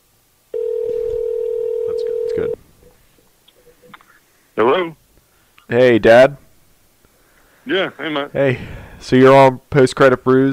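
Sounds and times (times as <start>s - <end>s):
phone dialing out with a steady electronic tone: 0.6s - 2.6s
speech: 4.6s - 5.0s, 5.7s - 6.4s, 7.7s - 10.5s.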